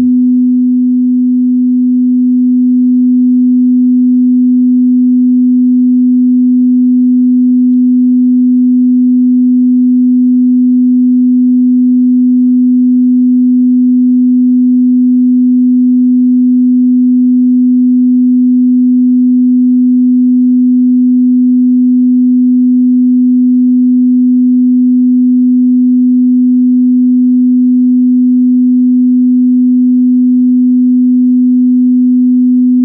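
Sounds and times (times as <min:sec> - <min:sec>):
pure 250 hertz sine wave tone: 0:00.0 - 0:32.8.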